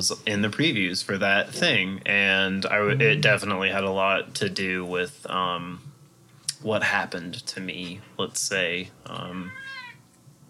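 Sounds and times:
speech: 0:00.0 - 0:05.9, 0:06.6 - 0:09.8
faint room noise: 0:00.0 - 0:10.4
cat meowing: 0:09.5 - 0:10.0.

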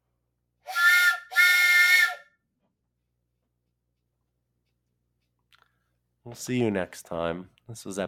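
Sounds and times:
train whistle blasts: 0:00.7 - 0:02.3
speech: 0:06.3 - 0:08.0.

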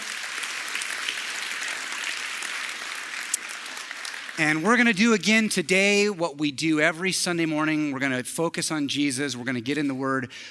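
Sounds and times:
large crowd applauding: 0:00.0 - 0:06.1
speech: 0:04.4 - 0:10.5.

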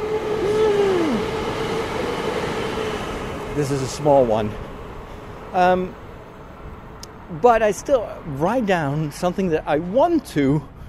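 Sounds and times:
train whining squeal bending downward: 0:00.0 - 0:05.5
train rumbling: 0:00.0 - 0:10.0
speech: 0:03.6 - 0:04.7, 0:05.5 - 0:06.0, 0:07.3 - 0:10.7.

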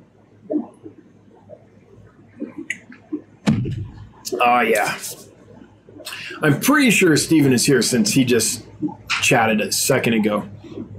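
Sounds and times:
person gulping and swallowing water: 0:00.4 - 0:06.4, 0:08.6 - 0:09.2
speech: 0:04.4 - 0:05.2, 0:06.4 - 0:10.9.

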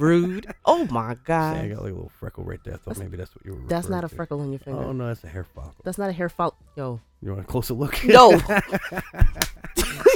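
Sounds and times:
speech: 0:00.0 - 0:10.1
hand slapping a person: 0:08.3 - 0:10.1
snickering laughter: 0:08.3 - 0:10.1.

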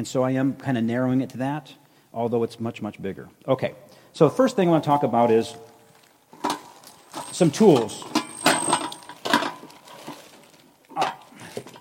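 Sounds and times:
speech: 0:00.0 - 0:05.7, 0:07.4 - 0:08.2
metal frying pan and roaster clanking and scraping while handled: 0:06.3 - 0:10.3.

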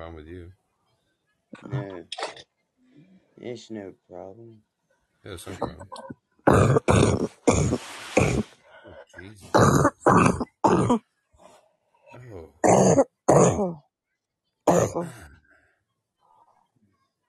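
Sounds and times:
speech: 0:00.0 - 0:00.6, 0:01.5 - 0:02.5, 0:03.4 - 0:07.9, 0:09.2 - 0:11.1, 0:13.6 - 0:13.8, 0:14.7 - 0:15.3
harsh coughing: 0:06.5 - 0:08.5, 0:09.5 - 0:11.0, 0:12.6 - 0:13.8, 0:14.7 - 0:15.3
throat clearing: 0:06.5 - 0:08.5, 0:09.5 - 0:11.0, 0:14.7 - 0:15.4.

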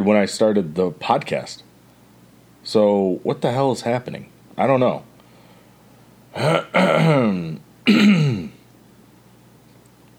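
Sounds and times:
speech: 0:00.0 - 0:01.7, 0:02.6 - 0:05.1, 0:06.3 - 0:08.5
raspy gravelly throat clearing: 0:06.3 - 0:08.6.

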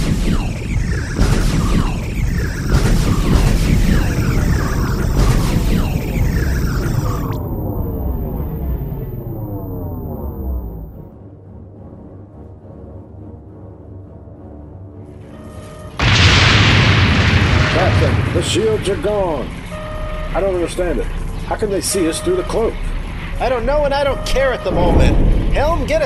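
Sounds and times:
sci-fi starship forward cannons firing: 0:00.0 - 0:10.9, 0:16.0 - 0:23.5, 0:24.1 - 0:26.0
descending whines: 0:00.0 - 0:11.1, 0:15.4 - 0:26.0
low rumbling explosion: 0:00.0 - 0:11.1, 0:16.0 - 0:21.7, 0:24.6 - 0:26.0
speech: 0:18.5 - 0:19.6, 0:20.4 - 0:26.0.

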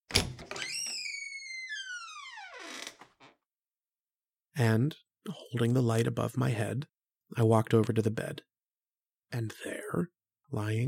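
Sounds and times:
long drawn-out creak of door hinges: 0:00.1 - 0:03.4
speech: 0:04.6 - 0:08.5, 0:09.3 - 0:10.8.

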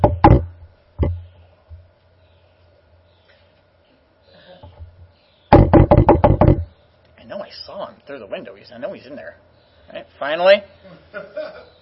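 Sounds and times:
sharp knocks on a house door by arriving visitors: 0:00.0 - 0:01.2, 0:05.5 - 0:06.7
speech: 0:08.1 - 0:11.7
laughter: 0:10.8 - 0:11.8.

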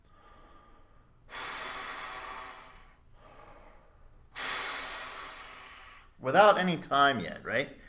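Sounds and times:
forceful exhales of free air in a breathing demonstration: 0:00.0 - 0:06.2
quiet breath: 0:00.0 - 0:06.2
speech: 0:06.2 - 0:07.8.

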